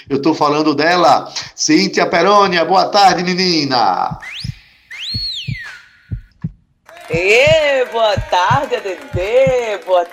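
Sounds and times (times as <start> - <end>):
speech: 0.0 - 4.5, 7.1 - 10.1
heartbeat sound effect with deep thumps: 4.0 - 9.6
swooping electronic tones: 4.2 - 6.4.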